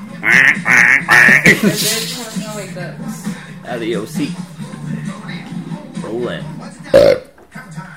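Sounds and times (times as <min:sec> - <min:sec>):
noise: 0:00.0 - 0:07.9
ducks quacking: 0:00.1 - 0:02.1
speech: 0:00.2 - 0:04.5, 0:06.1 - 0:07.2.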